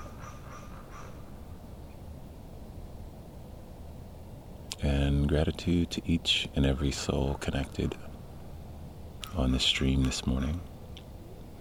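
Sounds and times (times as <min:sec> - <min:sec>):
birds calling with short bright chirps: 0:00.0 - 0:02.4, 0:06.0 - 0:11.6
speech: 0:04.8 - 0:08.1, 0:09.3 - 0:10.7.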